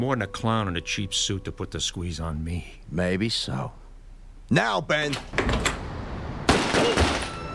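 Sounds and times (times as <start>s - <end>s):
speech: 0.0s - 3.8s, 4.5s - 5.7s
sharp loud gunshots in an office: 6.5s - 7.4s.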